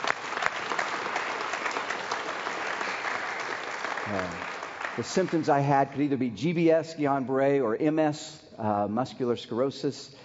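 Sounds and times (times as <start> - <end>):
audience clapping: 0.0 - 5.9
speech: 4.1 - 10.2.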